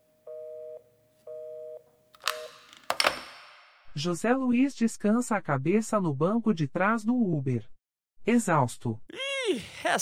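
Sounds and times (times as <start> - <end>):
phone handling clicks and rattling: 2.2 - 3.6
speech: 4.0 - 10.0.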